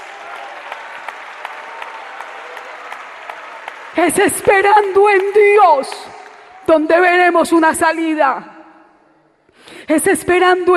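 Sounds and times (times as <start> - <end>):
crowd clapping during a church service: 0.0 - 6.9
speech: 4.0 - 6.1, 6.7 - 8.5, 9.9 - 10.7.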